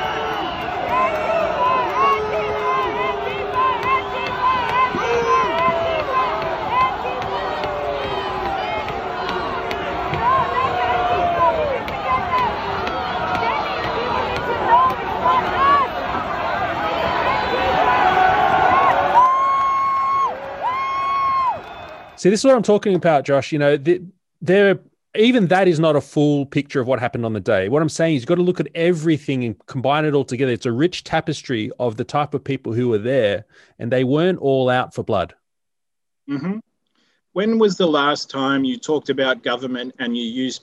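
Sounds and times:
large outdoor crowd of Trump supporters roaring and cheering: 0.0s - 22.2s
overlapping shouts and whoops: 0.0s - 22.2s
speech: 22.2s - 35.4s, 36.3s - 36.7s, 37.3s - 40.6s.

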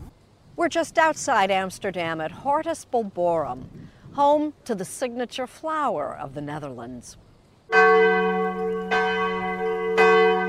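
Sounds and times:
speech: 0.6s - 8.3s
church bells ringing: 7.7s - 10.4s.

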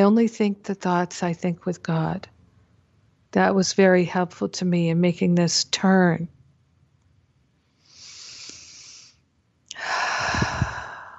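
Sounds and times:
speech: 0.0s - 2.4s, 3.3s - 6.4s
slow deep breath with airy inhale and breathy exhale: 7.8s - 11.1s.

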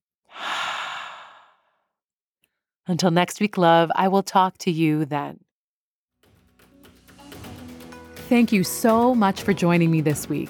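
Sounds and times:
deep breath in and out: 0.3s - 1.8s
speech: 2.9s - 5.4s, 8.3s - 10.4s.

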